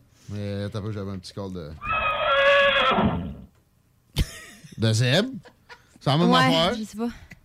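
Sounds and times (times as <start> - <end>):
speech: 0.3 - 2.0, 2.9 - 3.5, 4.8 - 7.4
horse neighing: 1.8 - 3.5.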